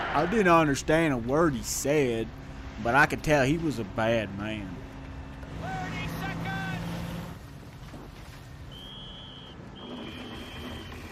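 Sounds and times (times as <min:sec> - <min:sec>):
speech: 0:00.2 - 0:04.8
boat engine rumble: 0:00.2 - 0:11.0
thin high whistle: 0:08.7 - 0:11.0
brief whining tones: 0:08.8 - 0:11.0.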